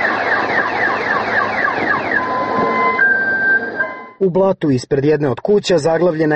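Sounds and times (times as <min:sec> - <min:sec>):
car alarm blaring from overturned car: 0:00.0 - 0:04.2
speech: 0:04.2 - 0:06.3.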